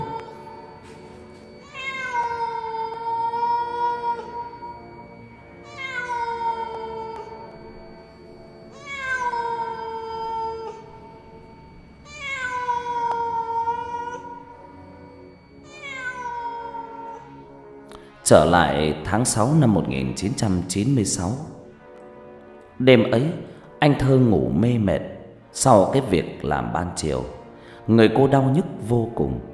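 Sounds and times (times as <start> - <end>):
cat meowing mournfully at night: 0.0 - 7.8, 8.7 - 17.5
speech: 18.3 - 21.6, 22.8 - 29.5.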